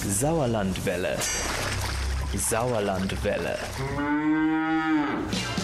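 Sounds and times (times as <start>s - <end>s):
speech: 0.1s - 5.5s
cow mooing: 3.8s - 5.3s.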